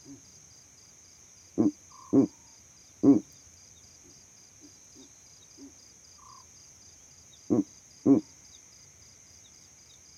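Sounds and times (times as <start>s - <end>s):
owl hooting at night: 1.6s - 2.4s, 3.0s - 3.3s, 7.5s - 8.3s.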